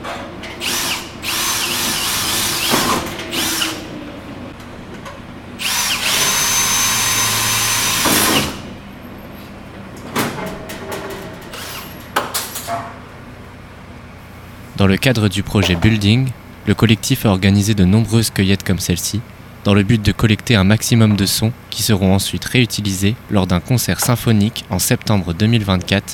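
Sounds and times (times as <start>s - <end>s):
power drill whining on a construction site: 0.6s - 3.9s, 5.6s - 8.6s
speech: 14.8s - 26.1s.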